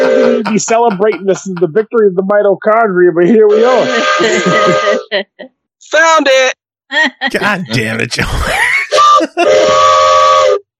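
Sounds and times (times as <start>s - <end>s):
heavy forearm-long train whistle made in the USA blowing multi-tone blasts: 0.0s - 0.5s, 9.0s - 10.6s
laughter: 0.0s - 2.5s, 3.1s - 5.5s, 7.0s - 9.6s
speech: 0.4s - 10.0s.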